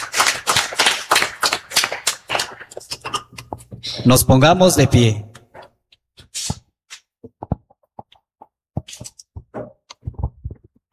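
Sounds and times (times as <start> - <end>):
audience applauding: 0.0 - 2.8
speech: 4.0 - 5.3.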